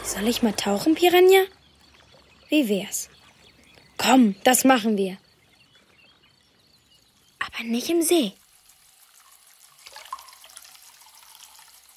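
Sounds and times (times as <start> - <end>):
speech: 0.1 - 1.6, 2.5 - 3.1, 4.0 - 5.2, 7.4 - 8.4
water running from a tap into a washbasin with the plug in: 8.4 - 11.9.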